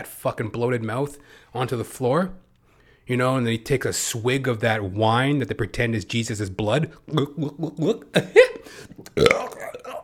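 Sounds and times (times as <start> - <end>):
speech: 0.0 - 2.5, 3.1 - 10.0
person imitating burps: 8.9 - 10.0.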